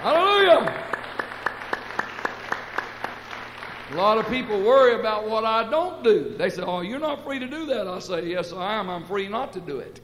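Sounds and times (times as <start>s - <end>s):
church congregation clapping in rhythm: 0.0s - 5.3s
speech: 3.9s - 10.0s.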